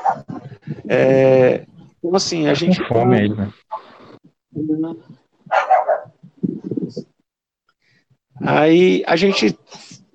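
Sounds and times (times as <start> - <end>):
dog barking: 0.0 - 0.4, 5.5 - 6.2
speech: 0.9 - 3.7, 4.8 - 5.1, 8.4 - 9.9.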